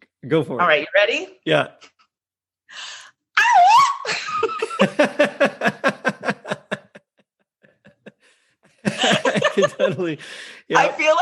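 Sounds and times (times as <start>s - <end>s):
speech: 0.2s - 1.9s, 4.8s - 5.8s, 9.6s - 11.2s
quick breathy intake: 2.7s - 3.2s, 10.2s - 10.7s
person vocally imitating a pop singer's signature yelp: 3.4s - 4.1s
laughter: 4.0s - 11.2s.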